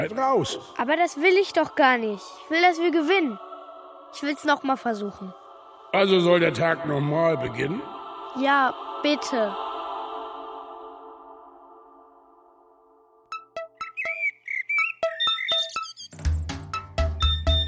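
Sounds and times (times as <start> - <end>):
speech: 0.0 - 3.5, 4.1 - 9.6
alarm clock beeping: 13.3 - 17.6.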